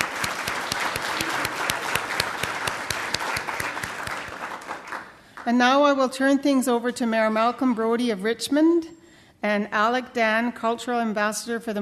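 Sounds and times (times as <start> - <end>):
audience applause: 0.0 - 5.4
speech: 5.5 - 11.7.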